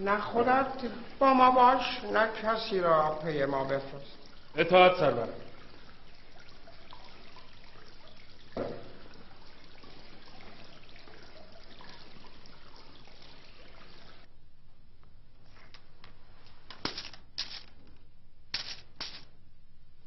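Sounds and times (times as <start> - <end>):
speech: 0.0 - 5.5
coins clinking: 16.9 - 17.7.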